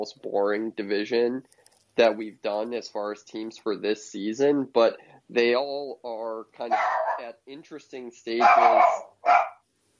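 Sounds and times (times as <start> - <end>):
speech: 0.0 - 9.5
dog barking sharply: 6.6 - 7.3, 8.4 - 9.6.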